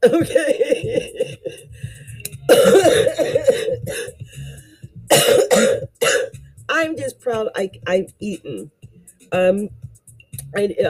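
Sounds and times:
sick person coughing harshly: 0.0s - 1.6s, 2.5s - 4.2s, 5.1s - 6.3s
speech: 0.1s - 0.5s, 7.9s - 9.8s, 10.5s - 10.8s.

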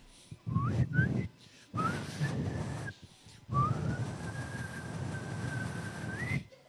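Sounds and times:
person whistling an imitation of little birds singing: 0.5s - 2.6s, 3.5s - 6.5s.

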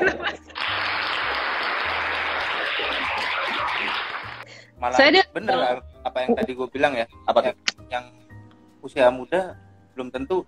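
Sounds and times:
laughter: 0.0s - 4.4s
applause: 0.5s - 4.4s
speech: 4.8s - 8.2s, 8.8s - 10.4s.

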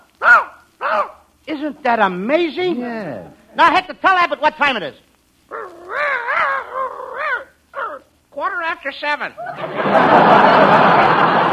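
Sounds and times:
person imitating a dog barking: 0.0s - 1.2s, 5.5s - 8.1s
speech: 1.5s - 5.1s, 8.5s - 11.5s
laughter: 9.4s - 11.5s.

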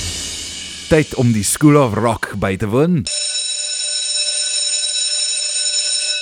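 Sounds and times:
speech: 0.9s - 3.3s
loud shrill metallic bell ringing as a quiz cue: 3.1s - 6.1s.

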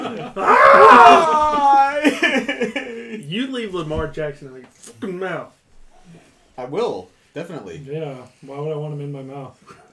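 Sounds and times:
laughter: 0.0s - 3.3s
speech: 0.3s - 0.5s, 3.3s - 9.9s
person screaming: 0.4s - 2.2s.

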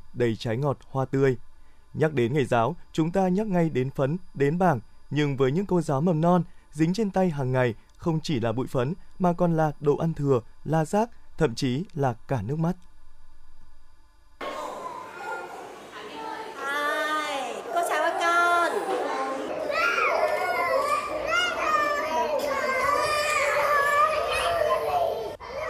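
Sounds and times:
speech: 0.2s - 12.9s
young children chattering at a kindergarten in Hoài Đức district: 14.4s - 25.6s.

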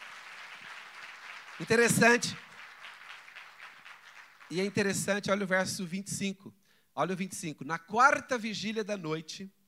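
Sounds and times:
church audience clapping: 0.0s - 4.6s
speech: 1.6s - 2.5s, 4.5s - 9.6s.

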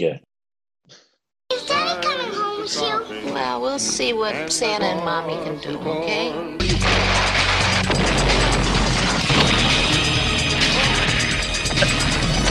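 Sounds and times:
speech: 0.0s - 0.2s, 0.9s - 7.2s
building being destroyed with a continuous crashing roar: 6.6s - 12.4s
heavy booming impacts: 6.6s - 12.4s.

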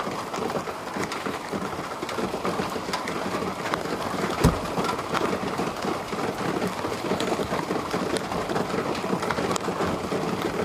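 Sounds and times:
light rain pattering: 0.0s - 10.6s
sharp knock: 4.4s - 4.7s.

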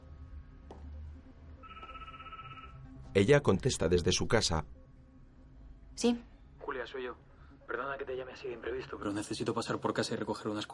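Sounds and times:
mobile phone call ringing tone from a caravan inside a workshop: 1.6s - 2.9s
speech: 3.2s - 4.8s, 6.0s - 10.7s.

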